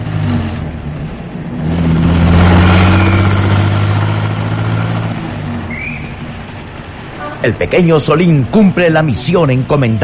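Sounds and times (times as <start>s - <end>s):
taxi engine revving and pulling away: 0.0s - 7.2s
speech: 7.4s - 10.0s.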